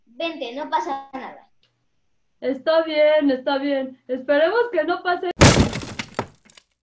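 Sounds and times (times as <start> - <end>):
speech: 0.2 - 1.5, 2.4 - 5.3
dull thump: 5.4 - 6.4
wooden plank breaking on a bridge: 5.4 - 6.7.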